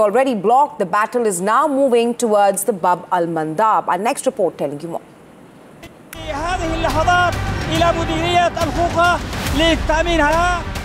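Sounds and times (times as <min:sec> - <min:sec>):
speech: 0:00.0 - 0:05.1, 0:06.3 - 0:10.8
crowd of fighters chanting in rising and falling tones: 0:06.2 - 0:10.8.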